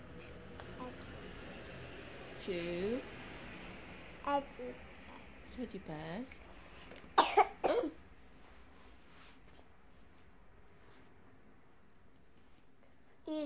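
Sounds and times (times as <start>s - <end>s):
speech: 2.4s - 3.2s, 4.2s - 4.9s, 5.5s - 6.5s, 7.6s - 8.0s
child coughing: 7.2s - 8.0s.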